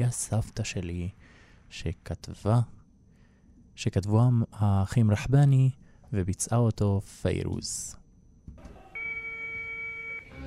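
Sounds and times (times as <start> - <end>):
speech: 0.0 - 2.8, 3.8 - 8.0
telephone ringing with a steady electronic tone: 8.8 - 10.4.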